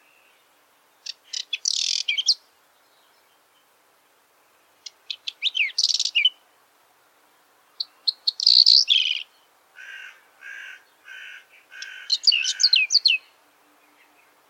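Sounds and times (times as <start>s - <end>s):
whinchat twittering song in Russia: 0.0s - 3.8s, 4.7s - 6.4s, 7.7s - 9.5s, 10.9s - 14.4s.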